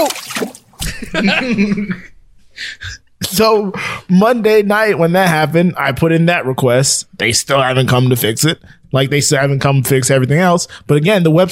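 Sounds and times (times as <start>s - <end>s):
water rushing and splashing from a detached kitchen faucet: 0.0s - 0.8s
laughter: 0.8s - 3.0s
speech: 1.1s - 11.5s.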